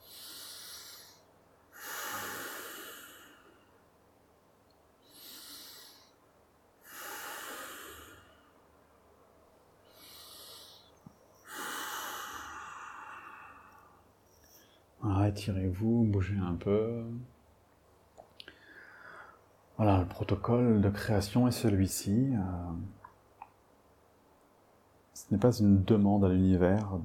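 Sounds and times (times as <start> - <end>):
deep slow breaths with sighing exhales: 0.0 - 3.8, 5.0 - 6.2, 6.8 - 8.7, 9.8 - 14.9, 18.4 - 19.4
speech: 15.4 - 17.3, 19.8 - 23.0, 25.3 - 27.0.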